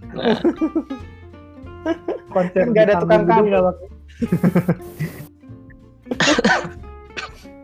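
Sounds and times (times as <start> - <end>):
laughter: 0.2 - 1.0, 1.8 - 2.9, 4.1 - 5.2
speech: 0.2 - 1.1, 1.8 - 5.2
person having a harsh raspy coughing fit: 6.1 - 7.5.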